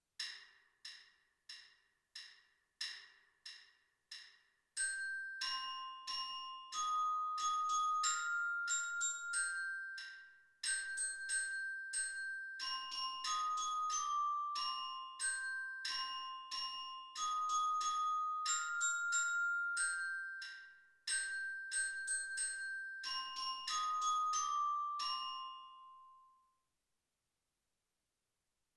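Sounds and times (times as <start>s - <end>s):
orchestra bells: 4.8s - 26.4s.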